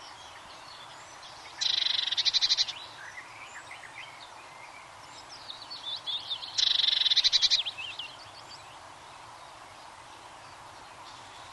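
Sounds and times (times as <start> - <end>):
Eurasian blue tit giving a pulsing high trill: 1.6 - 2.8, 6.3 - 7.8.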